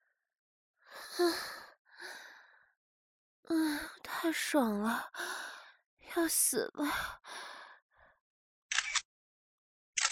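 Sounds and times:
speech: 1.2 - 1.5, 4.2 - 5.4, 6.1 - 7.4
camera shutter clicking: 8.7 - 9.1.

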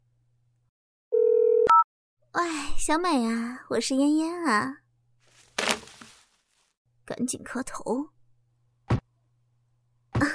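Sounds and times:
telephone ringback tone while call connects: 1.1 - 1.8
speech: 2.4 - 4.8, 7.1 - 8.1.

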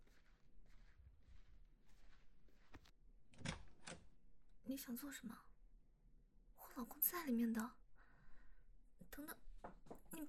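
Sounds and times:
soft footsteps: 0.0 - 3.0
metallic door latch click and rattle: 3.3 - 4.1
speech: 4.7 - 5.5, 6.8 - 7.8, 9.2 - 10.2.

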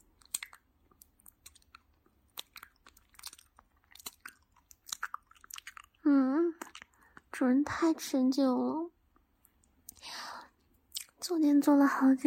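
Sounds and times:
wet chewing of a meat bun: 0.0 - 7.3, 10.9 - 11.2
speech: 7.4 - 8.9, 11.4 - 12.2.

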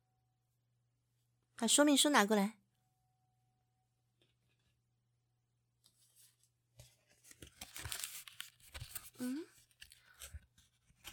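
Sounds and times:
speech: 1.6 - 2.6
packaging of new drone tearing and crinkling outdoors: 7.3 - 10.3.

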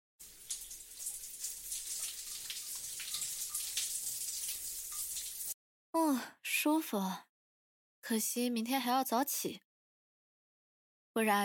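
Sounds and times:
water running into a bath: 0.2 - 5.6
speech: 6.2 - 7.3, 8.1 - 9.7, 11.2 - 11.4.

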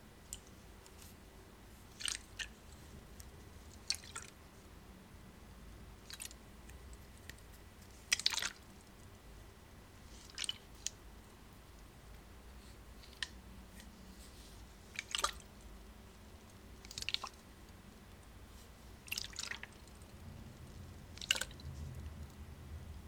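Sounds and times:
low steady hiss: 0.0 - 23.0
water dripping: 1.9 - 2.6, 3.7 - 4.4, 8.1 - 8.7, 14.9 - 15.5, 16.8 - 17.4, 19.0 - 20.1, 21.1 - 21.7.

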